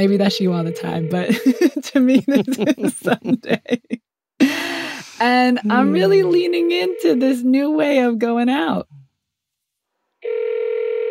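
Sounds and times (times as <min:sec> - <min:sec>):
speech: 0:00.0 - 0:04.0, 0:05.2 - 0:09.0
electronic phone ringing tone: 0:00.3 - 0:01.5, 0:05.7 - 0:07.4, 0:10.2 - 0:11.1
laughter: 0:01.3 - 0:06.4.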